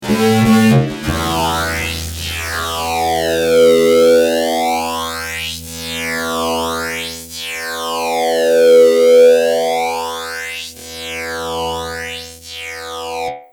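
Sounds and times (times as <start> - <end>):
fuzz guitar with ADA flanger: 0.0 - 13.4.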